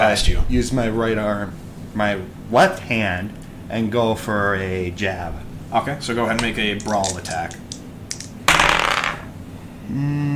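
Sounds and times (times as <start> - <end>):
speech: 0.1 - 7.6, 9.9 - 10.3
dice rolling on a hard tabletop: 6.4 - 9.3.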